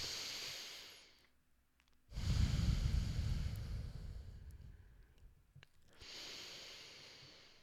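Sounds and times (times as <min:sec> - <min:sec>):
slow deep calming breaths: 0:00.0 - 0:01.2, 0:02.1 - 0:07.6.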